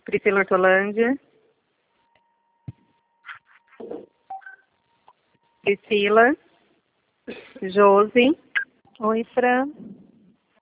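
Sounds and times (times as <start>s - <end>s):
speech: 0.1s - 1.3s, 5.6s - 6.4s, 7.3s - 8.4s, 9.0s - 10.0s
telephone keypad tones as a number is dialed: 4.3s - 4.7s.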